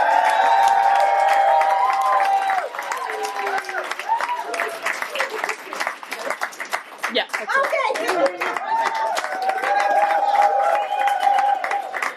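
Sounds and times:
crowd cheering and whooping: 0.0s - 5.7s, 8.3s - 12.1s
crowd applauding: 0.0s - 12.1s.

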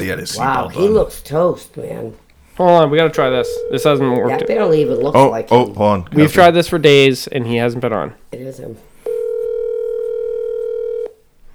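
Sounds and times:
speech: 0.0s - 8.9s
faint room noise: 0.0s - 11.5s
telephone dial tone while placing call: 3.4s - 5.2s, 9.0s - 11.2s.

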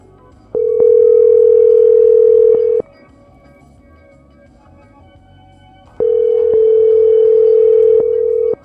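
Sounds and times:
telephone ringing tone on the line: 0.6s - 2.8s, 6.0s - 8.6s.

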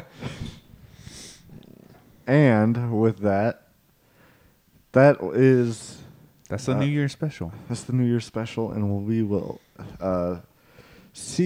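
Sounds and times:
cat purring: 0.4s - 2.4s
speech: 2.3s - 3.6s, 4.9s - 10.5s, 11.2s - 11.4s.

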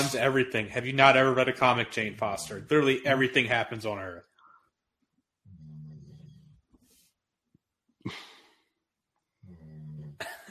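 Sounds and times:
speech: 0.0s - 4.3s, 8.0s - 8.2s
dog snoring: 5.4s - 6.9s, 9.4s - 10.3s.

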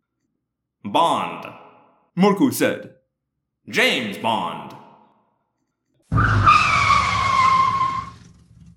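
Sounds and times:
speech: 0.9s - 1.6s, 2.2s - 3.0s, 3.7s - 4.8s
truck tires skidding to a stop: 6.1s - 8.7s.

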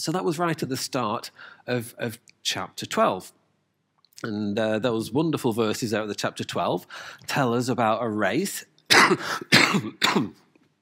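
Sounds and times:
speech: 0.0s - 3.4s, 4.2s - 10.4s
harsh coughs: 8.9s - 10.5s.

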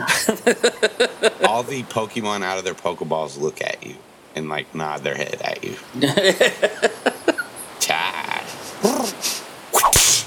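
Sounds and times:
laughter: 0.0s - 2.0s, 5.9s - 7.7s
speech: 0.0s - 7.1s
voice imitating whip cracks: 8.8s - 10.2s.

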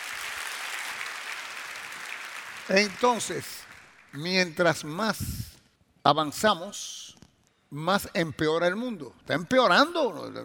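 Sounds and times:
crowd applauding: 0.0s - 4.2s
speech: 2.7s - 7.0s, 7.7s - 10.4s.

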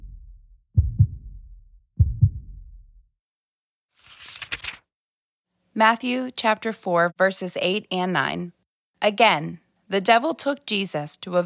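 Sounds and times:
slow deep lub-dub heartbeat: 0.0s - 3.1s
speech: 5.8s - 11.4s.

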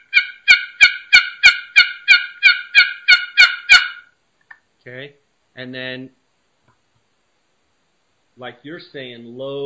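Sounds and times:
turkey assembly yelps made on a box call with short choppy strokes: 0.0s - 4.1s
speech: 4.8s - 6.2s, 8.4s - 9.6s.

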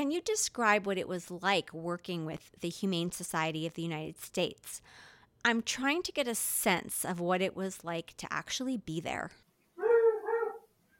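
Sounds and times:
speech: 0.0s - 9.4s
dog whimpering in a high-pitched whine: 9.8s - 10.7s.

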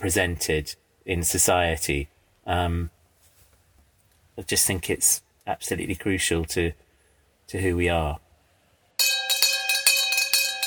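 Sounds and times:
speech: 0.0s - 3.0s, 4.4s - 6.8s, 7.5s - 8.2s, 9.0s - 9.3s
theatre interval bell ringing: 9.0s - 10.6s.

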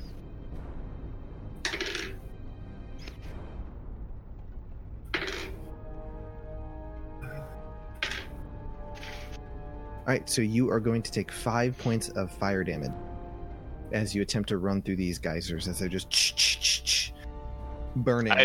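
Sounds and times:
dice clattering on a hard table: 1.7s - 2.2s, 5.1s - 5.6s, 8.0s - 8.3s
speech: 10.1s - 13.1s, 13.9s - 17.2s, 18.0s - 18.4s.

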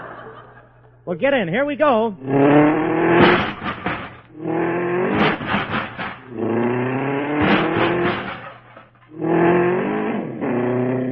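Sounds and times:
laughter: 0.0s - 1.0s
speech: 1.0s - 3.2s
car engine revving as the vehicle pulls out of a tight parking space: 2.2s - 11.1s.

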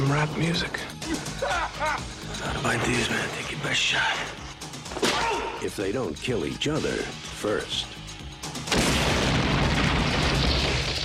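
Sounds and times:
speech: 0.0s - 4.4s, 5.0s - 8.0s
bomb explosion boom: 8.7s - 11.0s
sustained roar of rumbling debris: 8.7s - 11.0s.

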